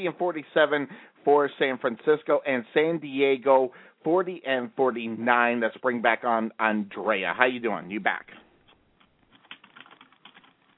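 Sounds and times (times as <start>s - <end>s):
speech: 0.0s - 8.4s
typing on a computer keyboard: 9.0s - 10.7s.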